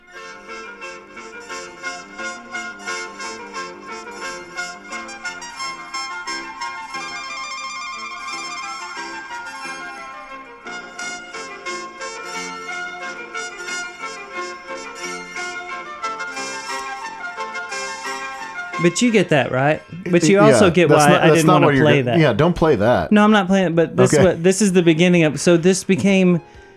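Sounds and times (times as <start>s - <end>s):
synthesizer music played through a small phone speaker: 0.1s - 19.2s
speech: 18.8s - 26.6s
laughter: 20.0s - 23.0s, 24.0s - 24.5s.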